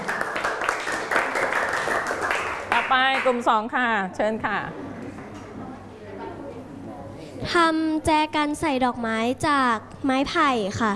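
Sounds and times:
students clapping for a group of classmates: 0:00.0 - 0:03.4
speech: 0:02.9 - 0:04.9, 0:07.4 - 0:10.9.

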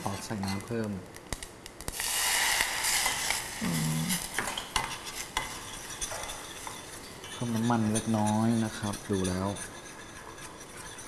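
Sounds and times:
speech: 0:00.3 - 0:01.2, 0:03.6 - 0:04.2, 0:07.4 - 0:09.7
utensil stirring a sauce in a pan: 0:02.8 - 0:11.0.

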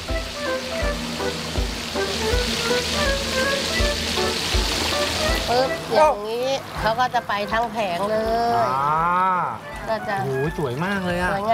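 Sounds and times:
periodic low thumps: 0:00.0 - 0:05.5
fish frying with garlic and pepper in hot oil in a wok: 0:00.0 - 0:05.8
speech: 0:05.5 - 0:11.5.

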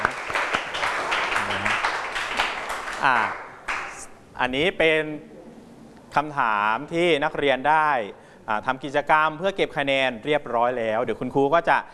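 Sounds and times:
room of students applauding: 0:00.0 - 0:04.1
speech: 0:03.0 - 0:03.4, 0:04.4 - 0:05.4, 0:06.1 - 0:11.9.

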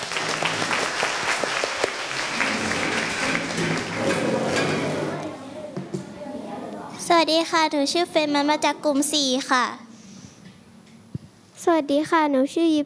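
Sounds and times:
classroom of people clapping for a student group: 0:00.0 - 0:05.0
speech: 0:07.2 - 0:09.8, 0:11.6 - 0:12.8.

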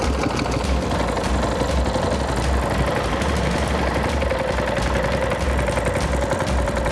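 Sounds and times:
fishing boat engine running on a river: 0:00.0 - 0:06.9.

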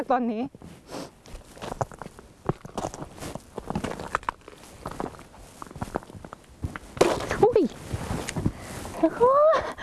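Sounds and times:
speech: 0:00.0 - 0:01.1, 0:09.0 - 0:09.7
slow shuffling footsteps on frozen river ice: 0:01.3 - 0:08.4.

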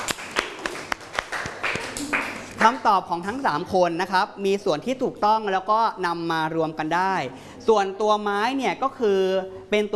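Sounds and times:
class of students clapping for a classmate: 0:00.0 - 0:02.8
speech: 0:02.6 - 0:09.9.

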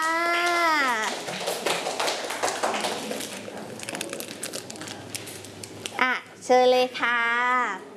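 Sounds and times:
group of children clapping for a classmate: 0:00.0 - 0:03.8
speech: 0:06.5 - 0:07.4.

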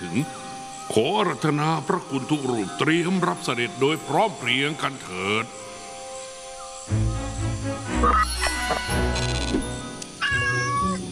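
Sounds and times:
speech: 0:00.1 - 0:05.7, 0:08.0 - 0:09.6
cat meowing continuously: 0:10.2 - 0:11.0.

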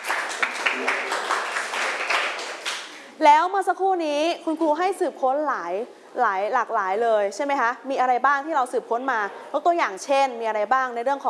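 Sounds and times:
class of students clapping for a classmate: 0:00.0 - 0:03.0
speech: 0:03.2 - 0:11.2.

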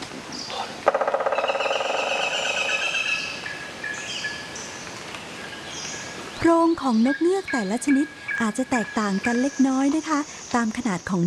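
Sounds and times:
woodpecker drilling a hole in a tree: 0:00.8 - 0:03.1
speech: 0:06.4 - 0:11.2.

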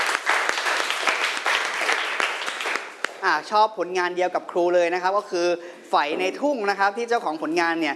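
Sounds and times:
classroom group of people clapping: 0:00.0 - 0:03.2
speech: 0:03.2 - 0:07.9.

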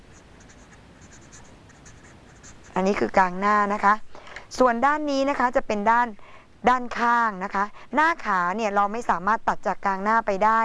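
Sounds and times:
teacher writing by hand with a pen during a lesson: 0:00.0 - 0:03.1
speech: 0:02.8 - 0:10.6.

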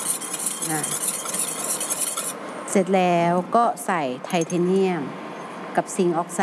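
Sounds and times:
stirring an oil mixture with a preservative added: 0:00.0 - 0:02.4
speech: 0:00.6 - 0:01.2, 0:02.8 - 0:05.2, 0:05.8 - 0:06.4.

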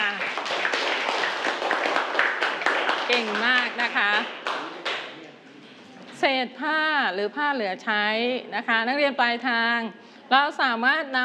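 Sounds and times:
children clapping for classmates during a classroom lesson: 0:00.0 - 0:05.2
speech: 0:03.2 - 0:04.4, 0:06.2 - 0:11.2.

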